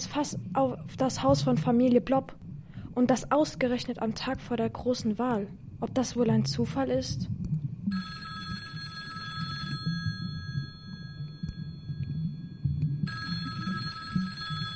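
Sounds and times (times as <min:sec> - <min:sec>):
speech: 0:00.0 - 0:08.1
telephone bell ringing: 0:07.9 - 0:14.7.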